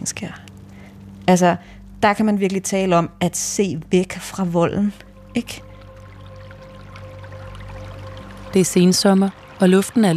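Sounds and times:
speech: 0.0s - 0.5s, 1.3s - 5.7s, 8.5s - 10.1s
small forest brook flowing: 5.0s - 10.1s.

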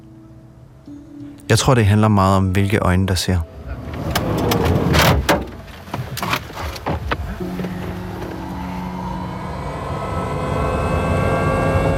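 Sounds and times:
speech: 1.5s - 3.5s
helicopter knocks and rattles: 3.9s - 8.5s
helicopter turbine whine and rotor roar during takeoff from airfield: 7.4s - 11.9s.

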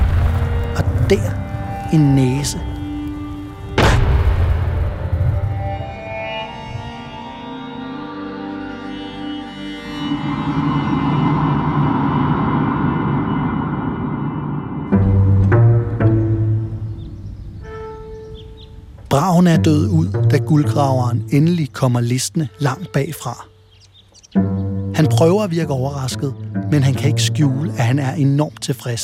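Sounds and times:
dense rumbling roar: 0.0s - 1.8s, 10.1s - 16.6s
speech: 0.8s - 2.7s, 19.1s - 23.5s, 24.4s - 29.0s
loud gunshots: 3.8s - 5.4s.

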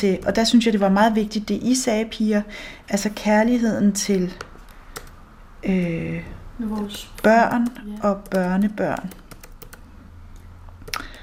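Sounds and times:
speech: 0.0s - 4.5s, 5.6s - 9.2s
typing on a computer keyboard: 4.9s - 5.2s, 6.8s - 9.8s, 10.8s - 11.2s.

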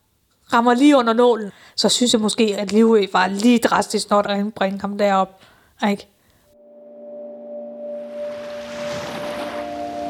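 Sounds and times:
speech: 0.5s - 6.1s
low humming boat engine drone: 6.6s - 10.0s
wash of water and waves from a boat: 7.3s - 10.0s.

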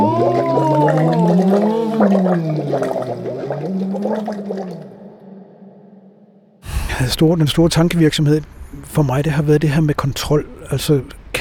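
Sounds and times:
voice gliding up and down in pitch in a speech therapy exercise: 0.0s - 5.6s
speech: 7.0s - 11.2s.

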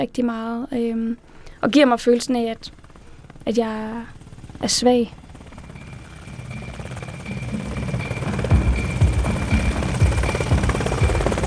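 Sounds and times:
speech: 0.0s - 2.8s, 3.4s - 5.2s
helicopter engine whine: 1.1s - 11.4s
helicopter rotor thumping: 2.4s - 11.4s.

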